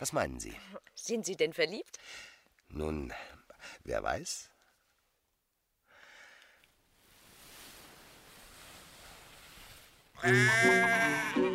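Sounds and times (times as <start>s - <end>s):
speech: 0.0s - 4.5s, 10.2s - 11.5s
soft rushing noise: 6.9s - 10.1s
sheep bleating among farm animals at a livestock show: 10.2s - 11.5s.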